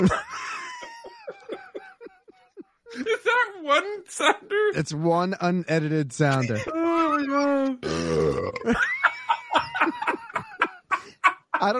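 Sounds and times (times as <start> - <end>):
speech: 0.0 - 0.4, 3.7 - 8.9
person laughing: 0.0 - 3.2, 6.3 - 7.8, 8.6 - 11.7
low deep burp: 7.8 - 8.8.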